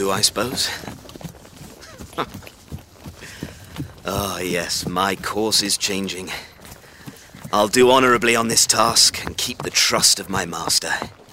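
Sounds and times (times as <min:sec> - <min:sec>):
speech: 0:00.0 - 0:01.0, 0:02.2 - 0:02.4, 0:04.1 - 0:06.5, 0:07.5 - 0:11.2
ridden horse hooves clip-clopping: 0:00.0 - 0:11.3.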